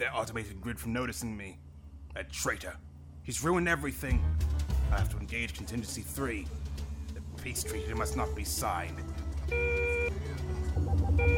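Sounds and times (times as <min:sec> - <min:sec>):
speech: 0:00.0 - 0:06.6, 0:07.4 - 0:10.5
high electronic proximity alarm tone: 0:09.5 - 0:10.2, 0:10.8 - 0:11.3.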